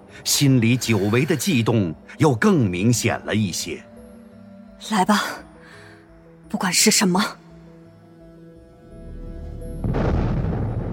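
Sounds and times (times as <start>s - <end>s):
speech: 0.1s - 3.9s, 4.8s - 5.5s, 6.5s - 7.4s
rumbling explosions booming in the sky: 9.8s - 10.9s.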